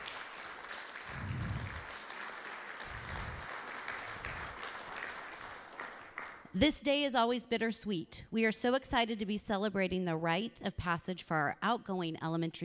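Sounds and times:
crowd applauding: 0.0 - 6.5
low thumps: 1.1 - 1.8
speech: 6.6 - 12.6.

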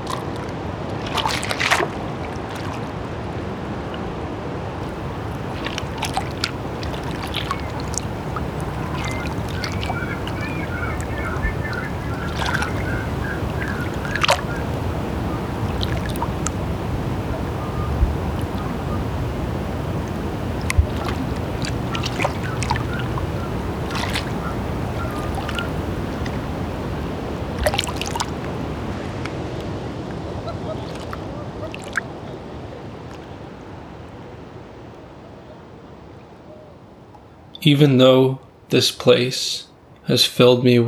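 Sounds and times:
splashy clicks: 0.0 - 3.2, 4.8 - 29.7
water lapping and rippling: 0.0 - 37.5
faint bird chirps: 4.9 - 26.4
speech: 37.6 - 40.8.

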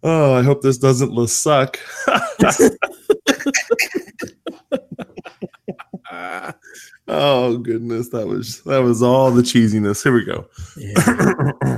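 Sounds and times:
speech: 0.0 - 4.0, 6.2 - 11.7
breathy chuckle-like bursts: 1.8 - 7.1, 10.8 - 11.7
person coughing: 2.4 - 6.8.

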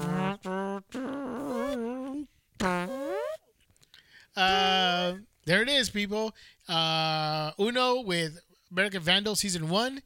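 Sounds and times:
loud buzzy fart sounds: 0.0 - 3.5
speech: 5.5 - 10.0.

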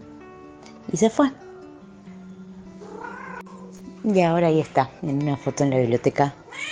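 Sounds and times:
speech: 0.9 - 1.4, 4.0 - 6.7
cat meowing in a long drawn-out cry: 2.8 - 3.8, 6.5 - 6.7.

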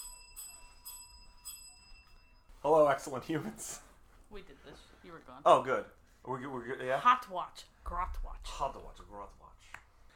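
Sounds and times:
bell ringing: 0.0 - 2.6
speech: 2.9 - 9.8.

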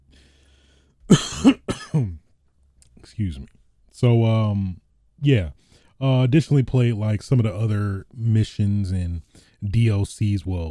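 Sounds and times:
person coughing after food or drink went down the wrong pipe: 1.1 - 2.2
speech: 3.2 - 10.6.

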